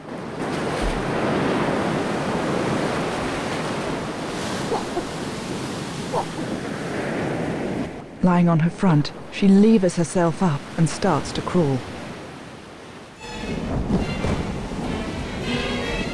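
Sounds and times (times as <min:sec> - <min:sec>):
sea waves washing over the shallows: 0:00.0 - 0:16.1
faint brief splashes in sea surf: 0:00.4 - 0:06.6
speech: 0:08.2 - 0:11.9.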